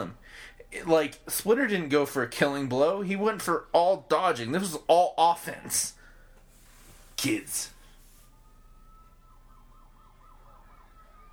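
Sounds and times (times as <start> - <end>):
speech: 0.0 - 6.0, 7.2 - 7.8
police car siren wailing and warbling: 8.1 - 11.3.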